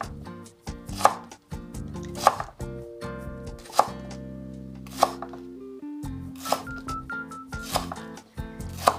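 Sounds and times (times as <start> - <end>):
knife slicing okra, cucumber and myoga on a board: 0.9 - 1.3, 2.1 - 2.6, 3.6 - 4.2, 4.9 - 5.3, 6.4 - 6.8, 7.6 - 8.9
faint tones: 2.7 - 7.6.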